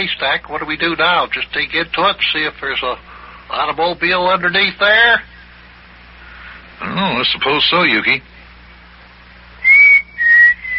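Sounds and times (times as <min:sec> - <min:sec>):
speech: 0:00.0 - 0:05.3, 0:06.8 - 0:08.3
person whistling as a signal: 0:09.6 - 0:10.7.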